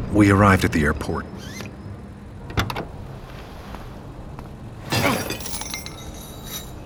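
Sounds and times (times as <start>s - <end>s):
speech: 0.1s - 1.6s
lock on an airport landing strip gate being smashed: 4.9s - 6.1s.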